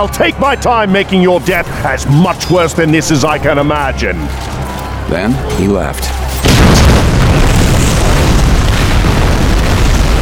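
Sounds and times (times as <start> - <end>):
speech: 0.0 - 6.2
loud explosion with deep booming rumble: 6.4 - 10.1.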